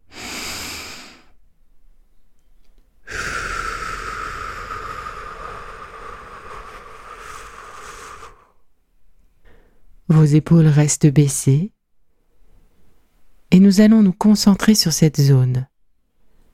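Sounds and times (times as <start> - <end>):
long steady audible exhale through the mouth: 0.0 - 1.4, 3.0 - 8.7
slow breathing in through the nose and out through the mouth during a guided relaxation exercise: 0.0 - 1.5, 3.0 - 8.8, 9.4 - 10.0
speech: 10.1 - 11.8, 13.5 - 15.7.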